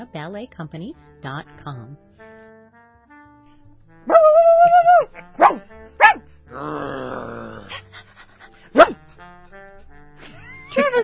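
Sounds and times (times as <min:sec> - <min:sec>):
speech: 0:00.0 - 0:02.3, 0:04.0 - 0:07.8
dog howling whine: 0:04.1 - 0:05.1
dogs barking: 0:04.1 - 0:06.2, 0:08.6 - 0:09.1
dog grumbling: 0:05.2 - 0:07.8.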